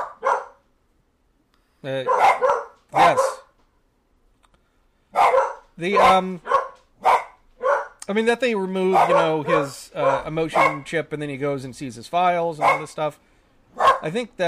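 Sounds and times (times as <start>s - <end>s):
dog barking: 0.0s - 0.6s, 2.0s - 3.5s, 5.1s - 8.0s, 8.9s - 10.9s, 12.6s - 13.0s, 13.8s - 14.1s
speech: 1.8s - 3.4s, 5.8s - 6.5s, 8.1s - 13.3s, 14.0s - 14.4s.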